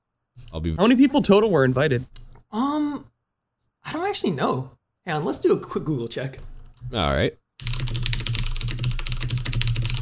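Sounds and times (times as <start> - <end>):
speech: 0.5 - 3.1, 3.8 - 8.0
typing on a mechanical keyboard: 7.6 - 9.9.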